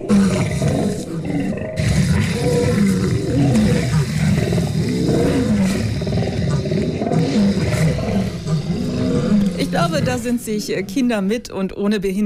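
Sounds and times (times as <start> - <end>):
lion roaring: 0.0 - 10.5
speech: 10.0 - 12.2.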